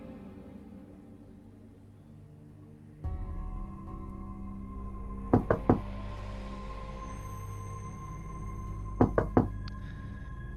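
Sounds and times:
low droning room tone: 0:00.0 - 0:10.5
sharp knocks on a hard surface: 0:05.4 - 0:05.9, 0:09.0 - 0:09.5.

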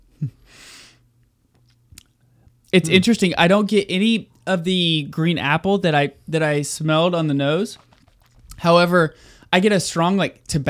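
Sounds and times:
wet mouth sounds: 0:01.6 - 0:03.0, 0:07.8 - 0:08.6
speech: 0:02.7 - 0:07.9, 0:08.6 - 0:10.6
wine chewed and swished in the mouth: 0:07.7 - 0:08.6.

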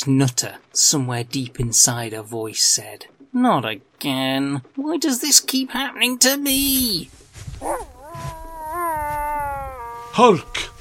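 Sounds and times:
speech: 0:00.0 - 0:09.1, 0:10.2 - 0:10.7
dog yelping: 0:07.6 - 0:10.7.

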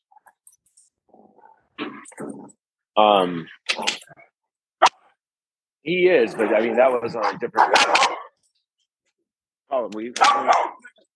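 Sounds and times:
speech: 0:02.1 - 0:04.2, 0:05.8 - 0:08.3, 0:09.8 - 0:10.9
several dogs barking and yelping: 0:06.2 - 0:08.4, 0:10.2 - 0:11.0.

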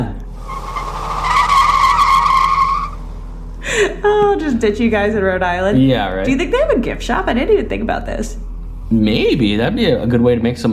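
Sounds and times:
faint engine rumble: 0:00.0 - 0:10.7
tires squealing as vehicle peels out: 0:00.3 - 0:03.8
speech: 0:04.5 - 0:10.7.

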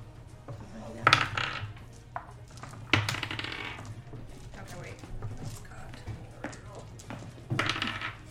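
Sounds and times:
people talking: 0:00.6 - 0:01.3, 0:04.5 - 0:07.0
twenty-sided die tumbling across a hard tabletop: 0:01.1 - 0:04.0, 0:07.1 - 0:08.2.

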